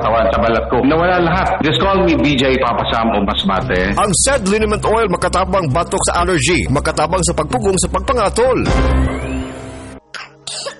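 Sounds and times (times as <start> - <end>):
speech: 0.5 - 9.7
child coughing: 10.2 - 10.7.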